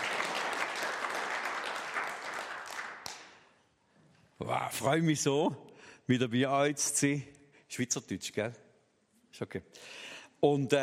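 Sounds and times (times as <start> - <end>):
church audience applauding: 0.0 - 3.5
speech: 4.4 - 8.6, 9.4 - 10.8.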